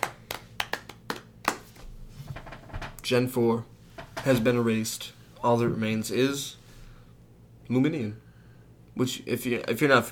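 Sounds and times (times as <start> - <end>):
hand clapping: 0.0 - 1.8
speech: 3.1 - 6.6, 7.7 - 8.2, 9.0 - 10.0.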